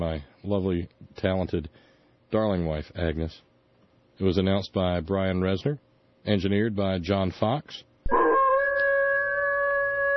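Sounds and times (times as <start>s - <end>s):
speech: 0.0s - 3.5s, 4.2s - 8.2s
wolf howling: 8.1s - 10.1s.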